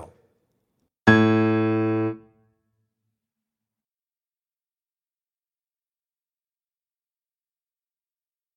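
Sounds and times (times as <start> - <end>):
bass playing a scale: 1.1 - 2.3.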